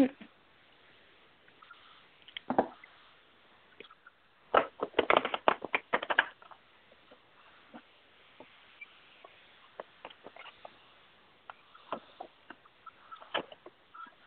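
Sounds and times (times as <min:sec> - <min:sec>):
playing cards being handled for a card reading: 0:04.6 - 0:06.5.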